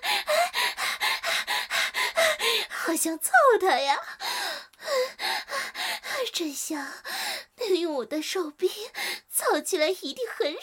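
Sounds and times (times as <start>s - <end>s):
excited human panting: 0.0s - 2.9s, 4.0s - 6.3s, 7.0s - 7.5s
speech: 2.9s - 4.2s, 6.4s - 7.1s, 7.7s - 10.6s.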